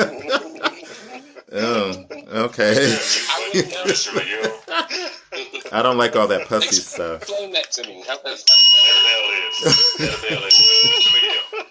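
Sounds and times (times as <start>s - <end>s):
laughter: 0.0s - 11.6s
speech: 2.4s - 5.0s, 5.7s - 8.6s, 9.6s - 11.2s
bright sustained electronic bell ringing: 8.5s - 11.6s.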